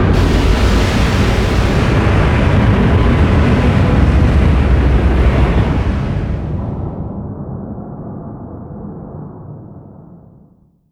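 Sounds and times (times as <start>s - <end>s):
distant super heavy battleship being destroyed: 0.2s - 7.2s.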